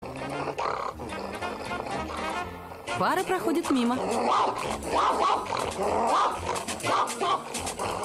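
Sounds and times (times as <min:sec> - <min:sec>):
boxer dog barking and growling: 0:00.0 - 0:08.0
speech: 0:03.0 - 0:08.0.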